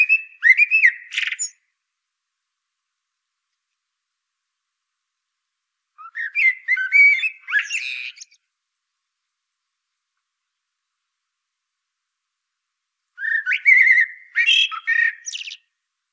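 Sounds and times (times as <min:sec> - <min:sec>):
common blackbird Turdus merula singing: 0:00.0 - 0:01.6, 0:06.0 - 0:08.4, 0:13.2 - 0:15.7.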